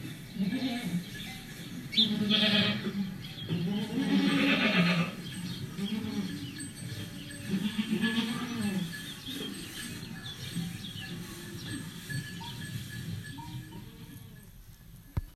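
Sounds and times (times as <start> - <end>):
goats: 0.0 - 15.3.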